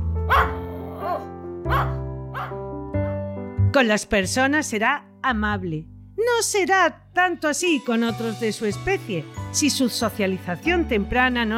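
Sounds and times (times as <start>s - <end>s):
small fox terrier barking: 0.3s - 2.6s
speech: 3.8s - 11.5s.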